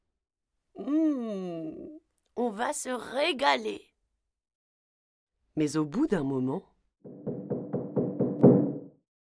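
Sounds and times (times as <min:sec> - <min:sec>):
speech: 0:00.8 - 0:01.8, 0:02.4 - 0:03.9, 0:05.6 - 0:07.3
knocking on a resonant hollow metal oven door: 0:07.1 - 0:08.9.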